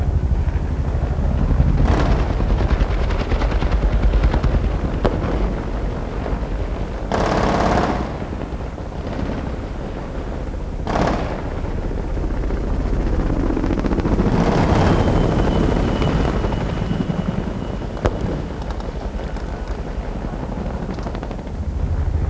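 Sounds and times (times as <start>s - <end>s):
battle ambience: 0.0s - 22.2s.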